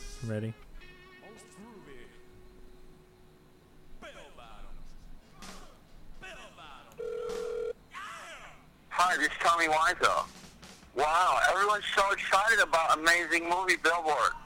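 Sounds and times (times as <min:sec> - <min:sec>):
speech: 0:00.2 - 0:00.7, 0:09.2 - 0:10.4, 0:11.0 - 0:14.4
outgoing phone call electronic ringback tones through a handset: 0:07.0 - 0:07.8.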